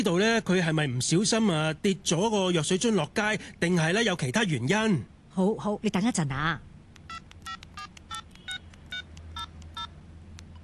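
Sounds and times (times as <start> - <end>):
speech: 0.0 - 7.2
low steady hum: 0.0 - 10.6
touch-tone beeps of a telephone number being dialed: 7.1 - 9.9.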